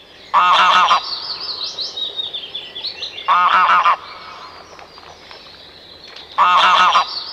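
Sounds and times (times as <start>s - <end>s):
faint higher twittering calls: 0.0s - 7.3s
greylag goose honking: 0.3s - 1.0s, 3.3s - 4.1s, 6.4s - 7.2s.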